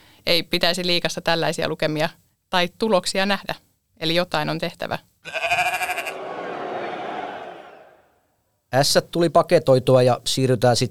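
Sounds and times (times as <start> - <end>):
speech: 0.2 - 5.5, 8.7 - 10.9
sheep bleating: 5.2 - 6.2
laughter: 6.0 - 8.0.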